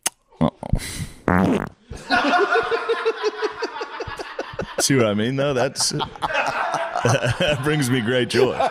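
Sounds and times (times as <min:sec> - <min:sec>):
loud fart into a butt microphone: 0:00.5 - 0:01.8
speech: 0:01.3 - 0:02.8, 0:04.8 - 0:08.6
rhythmic breathy laughter: 0:02.0 - 0:08.6.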